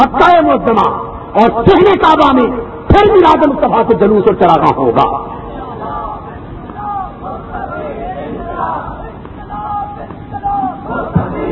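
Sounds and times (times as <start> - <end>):
speech: 0.0 - 5.4
large crowd chanting slogans in unison: 5.4 - 11.5.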